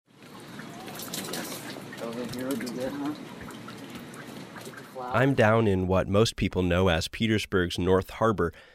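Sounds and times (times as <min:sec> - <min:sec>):
water pouring from a watering can onto plants outside a houseboat in Petersburg, Alaska: 0:00.1 - 0:05.2
speech: 0:02.1 - 0:03.4, 0:05.0 - 0:08.7.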